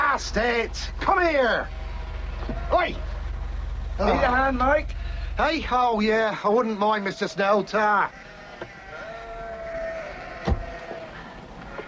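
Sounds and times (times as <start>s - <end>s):
speech: 0.2s - 1.8s, 2.4s - 3.1s, 4.0s - 8.3s
sheep bleating: 1.1s - 3.3s, 4.0s - 5.7s, 6.4s - 11.8s.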